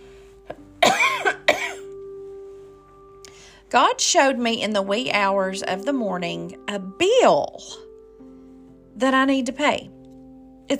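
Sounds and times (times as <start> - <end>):
harsh coughs preceded by a throat catch: 0.8 - 1.9
speech: 3.7 - 7.8, 9.0 - 10.0.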